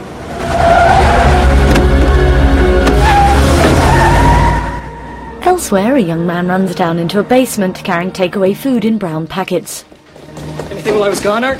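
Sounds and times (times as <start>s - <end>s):
getaway car tires squealing: 0.0s - 8.5s
getaway car speeding up and roaring off: 0.0s - 8.9s
speech: 5.7s - 11.5s.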